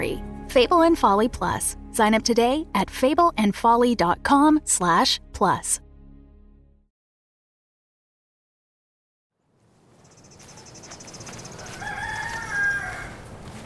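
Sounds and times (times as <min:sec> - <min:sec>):
speech: 0:00.5 - 0:05.8
high insect chirping on a cold clear morning on a farm trail: 0:10.0 - 0:11.7
rooster crowing near a farm chicken coop: 0:10.6 - 0:13.6.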